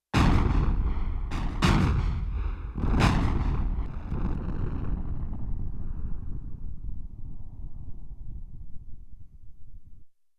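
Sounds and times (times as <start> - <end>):
sampler explosion sound effect: 0.2 - 7.0.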